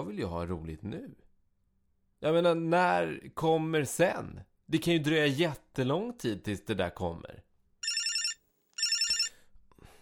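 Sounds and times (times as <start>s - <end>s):
speech: 0.2s - 1.3s, 2.2s - 7.5s
old-style telephone bell ringing: 7.8s - 9.4s.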